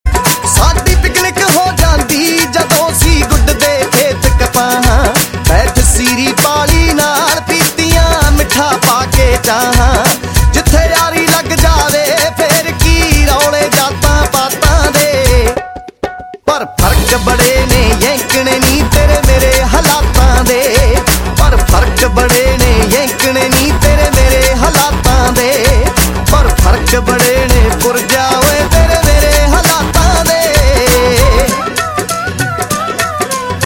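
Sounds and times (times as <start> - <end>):
Punjabi Bhangra tones: 0.0 - 33.6.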